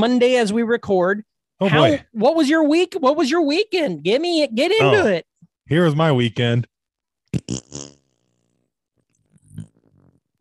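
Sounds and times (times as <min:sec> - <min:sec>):
speech: 0:00.0 - 0:06.7, 0:07.3 - 0:07.9
mouth fart noises: 0:07.3 - 0:08.6, 0:09.3 - 0:10.3
sputtering raspberry: 0:07.3 - 0:10.3.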